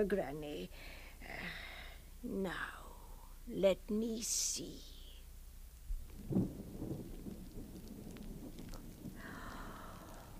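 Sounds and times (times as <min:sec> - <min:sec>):
speech: 0:00.0 - 0:02.8, 0:03.5 - 0:04.9
steady hiss of falling rain: 0:04.6 - 0:10.3
low rumble of thunder in a storm: 0:05.8 - 0:10.3.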